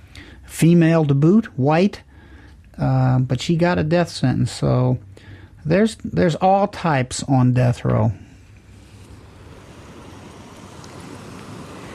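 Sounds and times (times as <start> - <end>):
speech: 0.6 - 2.1, 2.8 - 8.2
rushing sea surf: 8.7 - 11.9.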